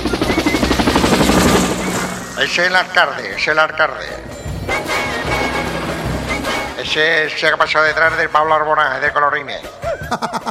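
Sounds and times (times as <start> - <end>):
helicopter engine roar: 0.0 - 6.9
helicopter rotor chop: 0.0 - 7.4
speech: 2.4 - 5.0, 6.8 - 10.4
laughter: 9.6 - 10.4.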